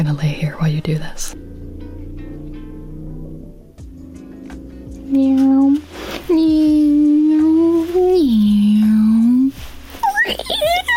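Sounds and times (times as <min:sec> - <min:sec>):
speech: 0:00.0 - 0:01.5, 0:05.1 - 0:06.6
voice imitating a car engine with droning hums: 0:04.5 - 0:09.5.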